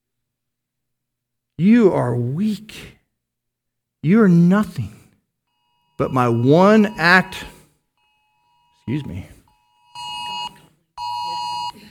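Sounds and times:
speech: 1.6s - 3.0s, 4.0s - 5.0s, 6.0s - 7.6s, 8.9s - 9.4s
mobile phone alert beeps: 5.6s - 11.8s.

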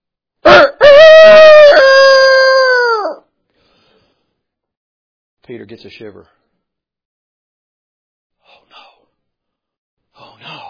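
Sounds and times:
rooster crowing: 0.4s - 3.2s
speech: 5.5s - 6.4s.

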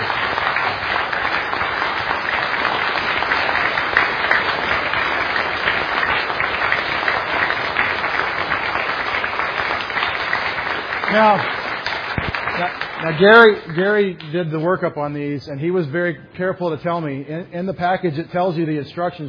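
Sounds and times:
sustained applause from a large audience: 0.0s - 13.9s
speech: 11.2s - 11.6s, 13.1s - 19.2s.

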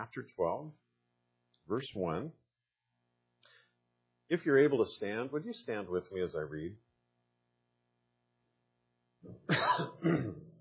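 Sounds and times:
speech: 0.0s - 0.9s, 1.7s - 2.4s, 4.3s - 6.9s, 9.2s - 10.4s
person clearing throat: 9.3s - 10.5s
person giving short rough coughs: 9.4s - 10.5s.

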